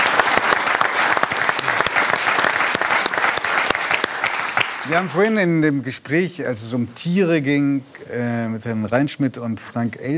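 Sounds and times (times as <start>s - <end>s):
studio audience applause: 0.0s - 5.2s
speech: 4.9s - 10.1s.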